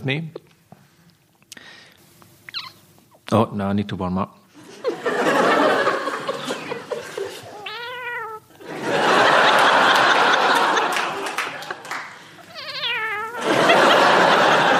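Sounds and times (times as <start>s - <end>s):
speech: 0.0s - 0.4s, 3.3s - 4.4s
loud audience laughing and roaring: 4.6s - 7.6s, 8.6s - 12.3s, 13.4s - 14.7s
person imitating a cat meowing: 7.6s - 8.5s, 12.4s - 13.4s.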